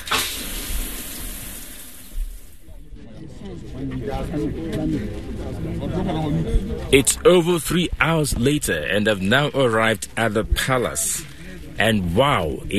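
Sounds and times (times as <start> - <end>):
shower water running: 0.0 - 2.6
speech: 3.4 - 12.7.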